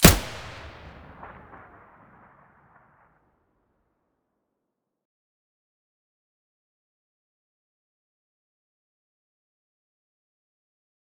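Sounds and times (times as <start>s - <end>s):
Vihr weapon muzzle blast: 0.0s - 1.8s.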